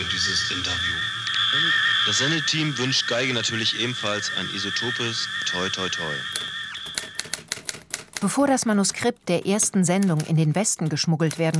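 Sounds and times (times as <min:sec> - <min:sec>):
speech: 0:00.0 - 0:06.4, 0:08.2 - 0:11.5
typewriter keys clacking as a manuscript is copied out: 0:06.4 - 0:11.5.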